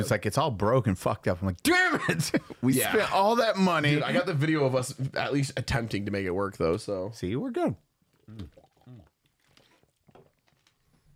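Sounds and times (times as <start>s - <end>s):
speech: 0.0s - 9.0s
softer slurps and liquid sounds: 8.1s - 10.7s
person gulping a drink quickly: 8.1s - 11.0s
loud throaty swallows: 8.2s - 10.4s.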